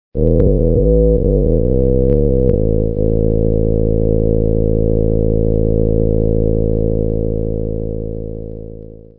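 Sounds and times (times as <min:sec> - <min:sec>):
infrabass rumble: 0:00.2 - 0:09.1.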